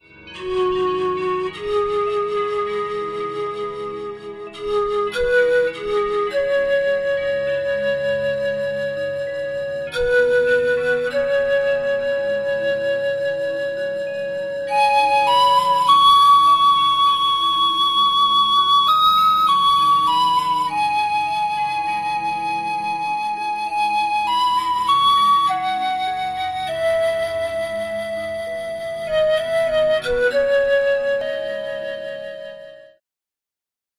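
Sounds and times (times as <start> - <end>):
Chinese paixiao panpipe: 0.0 - 33.0.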